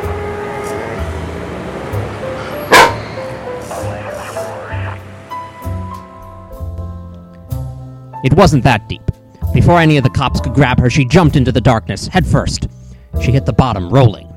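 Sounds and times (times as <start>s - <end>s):
single sharp loud dog bark: 2.6s - 3.1s
dense noisy crowd-like murmur and rumble: 3.2s - 5.1s
speech: 8.2s - 14.3s.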